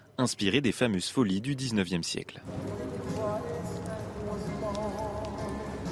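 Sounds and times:
speech: 0.2 - 3.3
horse hooves clip-clopping: 2.5 - 5.8.

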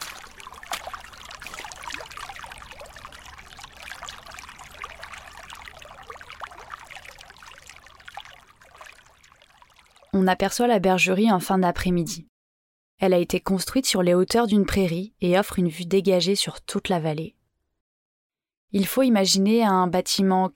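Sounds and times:
shallow snowmelt water trickling over stones and earth down a mountain path: 0.0 - 10.2
speech: 10.2 - 12.3, 13.0 - 17.4, 18.7 - 20.5.

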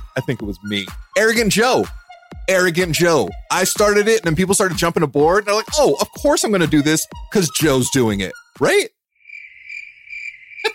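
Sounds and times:
speech: 0.2 - 9.0
crickets chirping in a high-pitched trill: 9.2 - 10.7.

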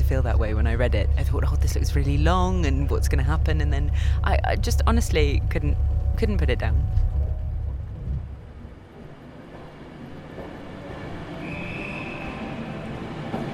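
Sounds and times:
branch line train rumbling along rails: 0.0 - 13.5
speech: 0.1 - 7.1
high-pitched train wheel squeal: 11.3 - 13.0.

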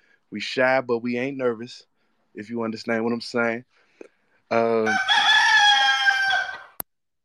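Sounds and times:
speech: 0.3 - 5.2
rooster crowing: 4.7 - 6.8.

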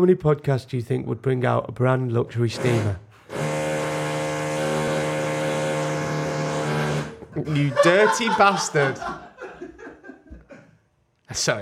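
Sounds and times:
speech: 0.0 - 3.4, 7.4 - 9.3, 11.3 - 11.6
drill whirring: 2.6 - 7.2
laughter: 7.1 - 10.8.

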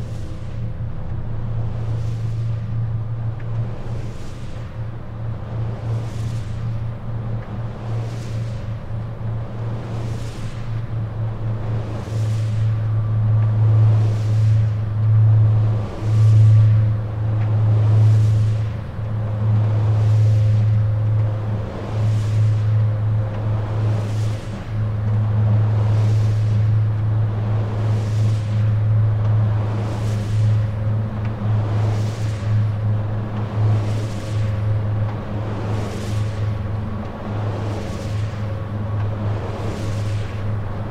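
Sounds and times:
wind turbine steady low drone: 0.0 - 40.8.

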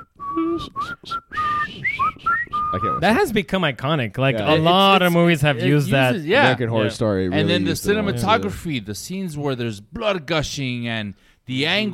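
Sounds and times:
person whistling a film score melody: 0.0 - 3.0
speech: 0.6 - 1.9, 2.8 - 11.9.

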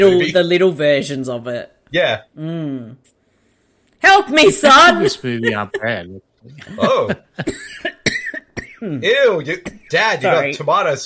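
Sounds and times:
speech: 0.0 - 3.1, 4.0 - 8.2, 8.8 - 11.0
laughter: 4.5 - 7.5
harsh coughing fit: 5.2 - 10.5.

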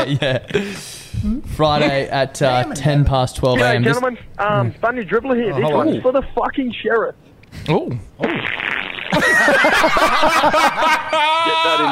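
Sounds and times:
laughter: 0.0 - 0.8, 9.1 - 11.8
speech: 0.0 - 11.8
loud fart: 8.2 - 9.3.

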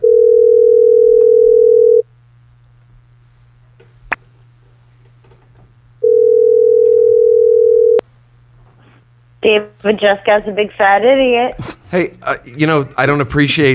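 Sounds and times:
steady telephone tone as a call is placed: 0.0 - 2.0, 6.0 - 8.0
quiet telephone line hum: 0.0 - 13.7
speech: 9.5 - 13.7.

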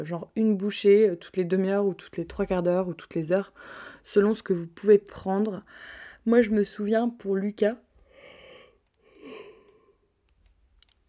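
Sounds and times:
speech: 0.0 - 7.8
person yawning: 9.1 - 9.9.

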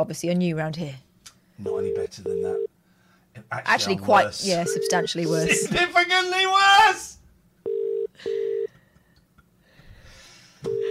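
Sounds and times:
speech: 0.0 - 2.7, 3.4 - 7.2
electronic ringback tone of an unanswered phone call: 1.7 - 2.7, 4.5 - 5.2, 7.7 - 8.7, 10.7 - 10.8.

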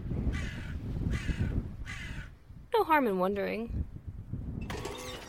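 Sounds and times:
crows cawing: 0.3 - 2.3
speech: 2.8 - 3.9.

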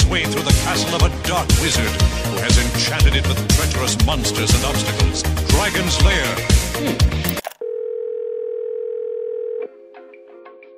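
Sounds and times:
speech: 0.2 - 7.3
telephone dial tone from an automatic dialer call: 7.6 - 9.7.

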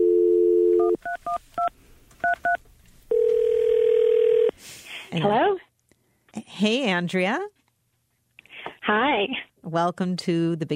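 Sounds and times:
phone dial tone: 0.0 - 4.5
speech: 5.1 - 5.6, 6.5 - 7.5, 8.9 - 10.7.

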